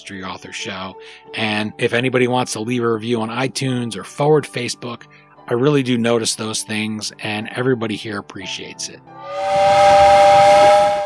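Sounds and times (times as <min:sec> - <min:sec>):
speech: 0:00.0 - 0:10.7
steam train whistle blast: 0:09.2 - 0:11.0.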